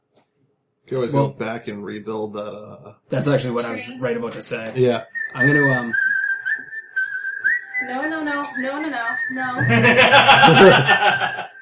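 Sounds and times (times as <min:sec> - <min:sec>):
speech: 0:00.9 - 0:06.0, 0:07.9 - 0:11.5
people laughing: 0:01.1 - 0:05.9, 0:09.5 - 0:11.5
whistled melody playing as video game tavern music: 0:03.2 - 0:11.5.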